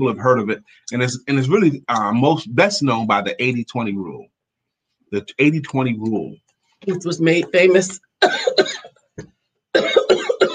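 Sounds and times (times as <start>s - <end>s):
speech: 0.0s - 4.3s, 5.1s - 9.9s
person coughing: 8.2s - 8.9s, 9.8s - 10.5s.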